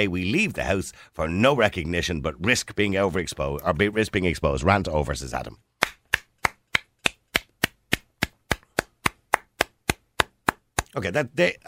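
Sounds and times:
speech: 0.0 - 5.7, 10.9 - 11.6
hand claps: 5.8 - 11.0.

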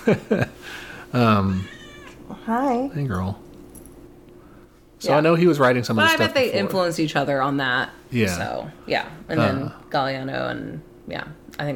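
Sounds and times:
speech: 0.0 - 3.4, 5.0 - 11.7
cat meowing: 1.5 - 2.2.

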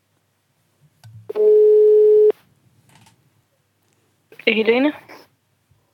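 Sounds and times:
telephone ringing tone for outgoing call: 1.3 - 2.4
speech: 4.5 - 5.2.

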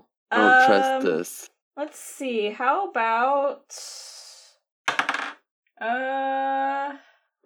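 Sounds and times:
speech: 0.3 - 4.2, 5.8 - 7.4
dice tumbling across a hard table: 4.9 - 5.4.

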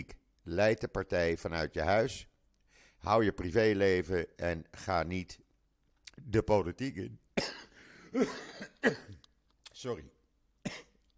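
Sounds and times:
speech: 0.0 - 2.3, 3.0 - 5.4, 6.2 - 9.2, 9.8 - 10.8
person coughing: 7.4 - 9.3, 10.6 - 11.1.

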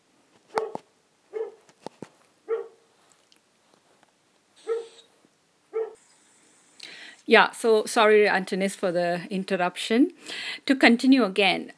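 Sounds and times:
dog barking: 0.5 - 1.6, 2.5 - 2.8, 4.6 - 5.1, 5.7 - 6.1
speech: 7.3 - 11.7.

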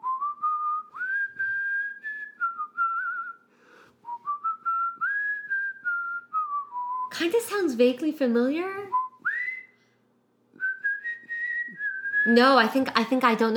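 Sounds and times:
person whistling the intro of a song: 0.0 - 7.1, 8.9 - 9.8, 10.6 - 12.3
speech: 7.2 - 9.0, 12.2 - 13.5.

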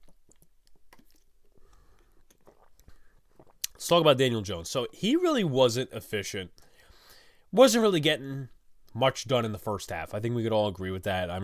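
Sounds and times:
person sipping and swallowing a drink: 0.0 - 3.8
speech: 3.8 - 6.6, 7.5 - 11.4.

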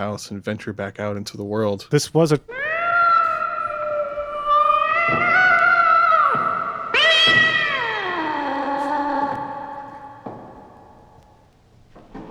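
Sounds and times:
speech: 0.0 - 2.6
cat yowling in long drawn-out wails: 2.5 - 11.0.

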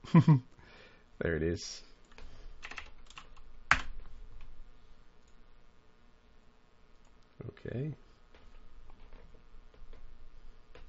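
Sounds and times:
speech: 0.1 - 0.5, 1.2 - 1.9, 7.7 - 8.0
typing on a computer keyboard: 2.1 - 4.0.

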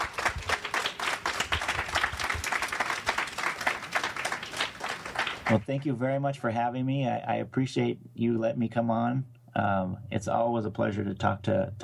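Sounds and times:
audience applause: 0.0 - 5.6
speech: 5.5 - 11.8.

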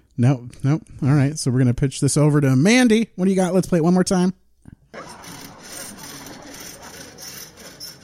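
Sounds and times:
speech: 0.2 - 5.2
saw cutting through wood in rapid back-and-forth strokes: 5.0 - 8.0.

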